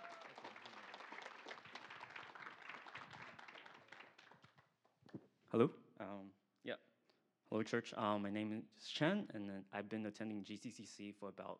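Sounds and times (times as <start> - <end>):
church audience applauding: 0.0 - 4.6
speech: 5.5 - 5.8, 7.5 - 11.5.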